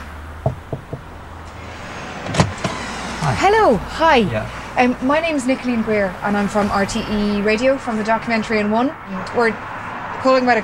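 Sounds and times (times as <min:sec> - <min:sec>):
firm knocks on a house door: 0:00.4 - 0:01.1
speech: 0:03.3 - 0:10.6.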